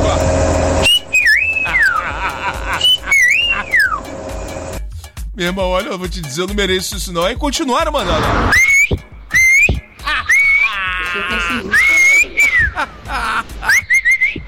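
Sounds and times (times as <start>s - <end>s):
steady hum: 0.0s - 4.8s
person whistling a sliding swooping tune: 0.8s - 2.1s, 2.7s - 4.1s, 8.5s - 10.8s, 11.5s - 12.8s, 13.7s - 14.4s
laughter: 1.4s - 4.0s, 10.0s - 14.1s
speech: 5.4s - 8.6s.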